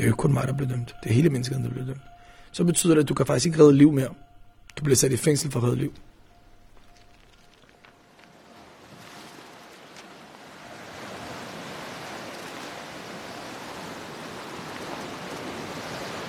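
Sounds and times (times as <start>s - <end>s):
speech: 0.0s - 6.1s
rough morning sea waves washing onto the shore at Lesbos: 8.0s - 16.2s.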